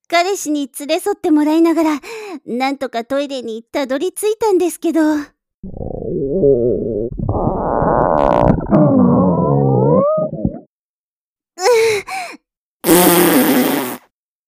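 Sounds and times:
speech: 0:00.1 - 0:07.6
long loud wavering fart and raspy blasts: 0:05.6 - 0:10.7, 0:12.8 - 0:14.2.

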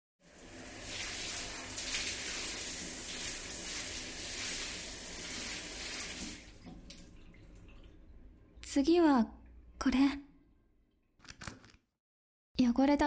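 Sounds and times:
shower water spraying: 0:00.3 - 0:07.2
speech: 0:08.7 - 0:10.3, 0:12.6 - 0:13.0.

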